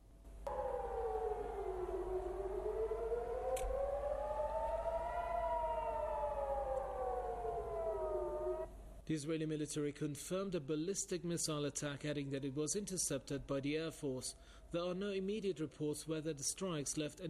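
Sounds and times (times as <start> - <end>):
air raid siren wailing: 0.5 - 9.0
speech: 9.1 - 17.2.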